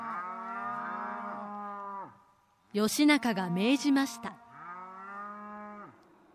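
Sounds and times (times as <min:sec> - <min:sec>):
cow mooing: 0:00.0 - 0:02.2, 0:03.6 - 0:06.1
speech: 0:02.7 - 0:04.4.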